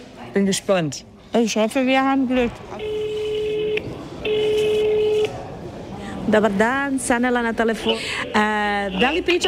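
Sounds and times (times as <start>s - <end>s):
speech: 0.2s - 3.0s, 6.3s - 9.4s
telephone tones as a call is placed to a hospital: 2.7s - 5.4s.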